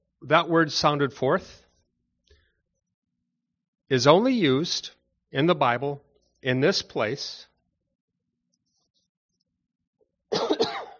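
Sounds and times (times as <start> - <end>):
speech: 0.2 - 1.6, 3.9 - 7.5
harsh hacking coughs with a raspy tail: 10.3 - 10.9.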